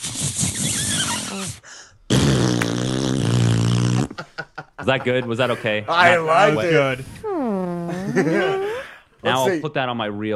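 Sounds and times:
fart noise made by squeezing air between cupped hands: 0.1 - 4.2, 7.2 - 8.3
laughter: 3.9 - 7.0, 7.9 - 9.0
speech: 4.8 - 7.2, 8.1 - 10.3.

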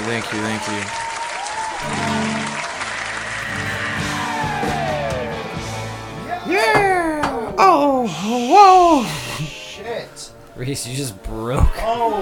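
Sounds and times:
crowd clapping: 0.0 - 5.6
speech: 0.1 - 1.0, 1.8 - 2.4, 9.9 - 12.2
excited cheering voices: 0.6 - 9.3
shouts and whoops: 0.9 - 2.2, 3.5 - 5.5, 6.3 - 9.1.

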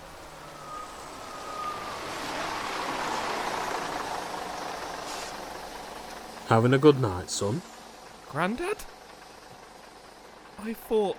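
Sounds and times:
brief high squeal: 0.0 - 6.0
bus arriving at a stop: 0.0 - 11.1
speech: 6.5 - 9.0, 10.6 - 11.1.

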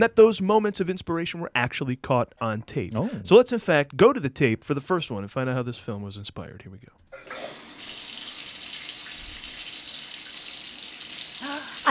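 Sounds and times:
speech: 0.0 - 7.6
shower water running: 7.1 - 11.8.

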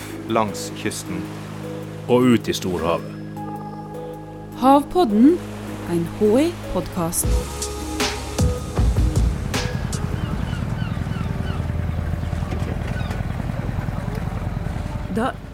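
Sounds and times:
gulls calling: 0.0 - 15.5
speech: 0.3 - 1.5, 2.1 - 3.2, 4.6 - 7.7, 15.2 - 15.4
small fishing boat engine chugging: 8.4 - 15.5
faint dockside sounds: 10.3 - 15.5.

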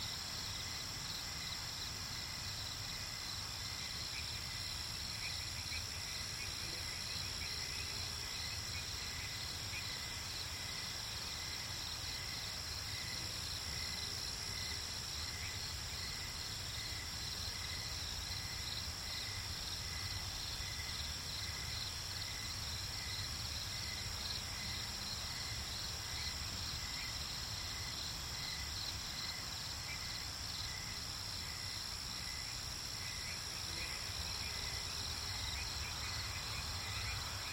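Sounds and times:
crickets chirring in a night swamp: 0.0 - 37.5.

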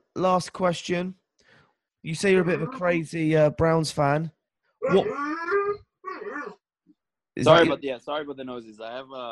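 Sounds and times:
speech: 0.2 - 1.2, 2.0 - 5.2, 7.4 - 9.3
dog whimpering in a bedroom of a boarding house: 2.3 - 2.9, 4.8 - 6.6.

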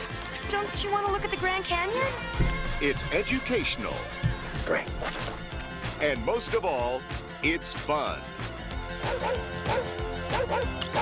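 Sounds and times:
dense steady musical backdrop: 0.0 - 11.0
speech: 0.5 - 5.4, 6.0 - 8.4, 9.0 - 11.0
dog barking: 9.0 - 11.0.

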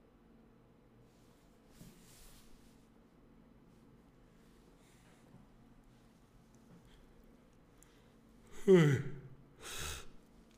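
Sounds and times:
person yawning: 8.5 - 10.2.

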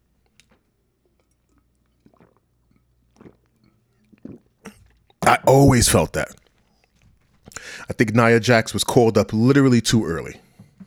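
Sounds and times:
soft wet slurping and swallowing: 0.4 - 6.4
person sipping a drink: 1.2 - 6.4, 7.6 - 7.9
speech: 5.5 - 6.4, 7.9 - 10.5.

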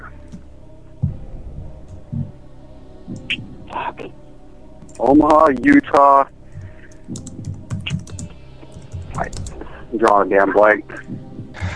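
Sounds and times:
speech: 5.0 - 6.4, 9.9 - 11.2
rapid typing on a computer keyboard: 7.1 - 8.3, 8.9 - 9.6.

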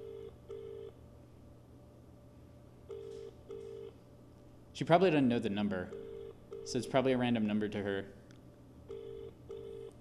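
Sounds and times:
outgoing phone call double-ring tones: 0.0 - 1.0, 2.9 - 4.0, 5.9 - 6.9, 8.9 - 10.0
low hum: 0.0 - 10.0
speech: 4.8 - 6.1, 6.7 - 8.2.

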